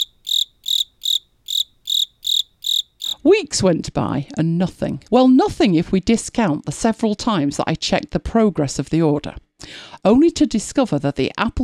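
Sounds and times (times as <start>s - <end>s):
crickets chirping: 0.0s - 3.2s
speech: 3.2s - 11.6s.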